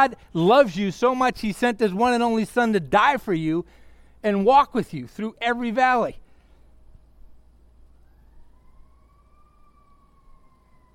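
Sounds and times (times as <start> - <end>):
speech: 0.0 - 6.2
ambulance or fire truck siren wailing in a rising sweep: 8.0 - 10.9.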